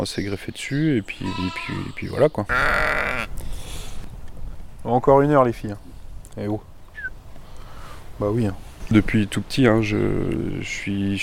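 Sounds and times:
speech: 0.0s - 3.5s, 4.8s - 6.7s, 8.2s - 11.2s
ewe bleating at a ewe-breeding farm: 1.2s - 3.3s.

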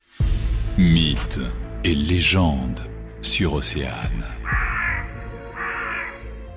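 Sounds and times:
speech: 0.8s - 4.4s
crow cawing: 4.4s - 6.4s.

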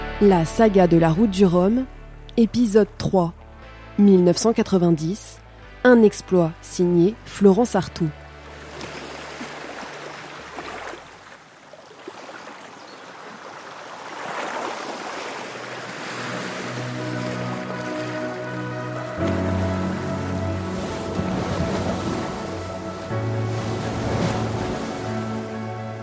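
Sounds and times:
speech: 0.2s - 3.4s, 4.0s - 8.2s
sea waves washing around a large racing trimaran on the Caribbean sea: 8.4s - 26.0s.

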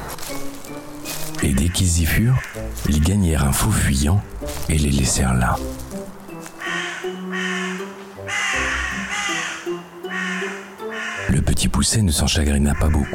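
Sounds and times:
rustling: 0.0s - 1.5s, 2.4s - 6.7s
crow cawing in a dark forest: 1.4s - 3.1s, 6.6s - 11.3s, 12.6s - 13.1s
speech: 1.4s - 5.9s, 11.8s - 13.1s.

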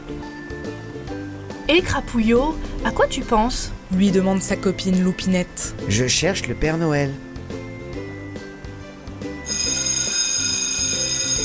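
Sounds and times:
melodic tune: 0.1s - 11.4s
speech: 1.7s - 7.3s
school bell ringing: 9.4s - 11.4s.

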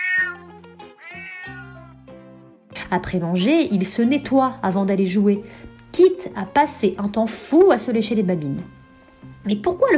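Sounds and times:
cat meowing: 0.0s - 2.1s
speech: 2.9s - 8.8s, 9.4s - 9.9s.

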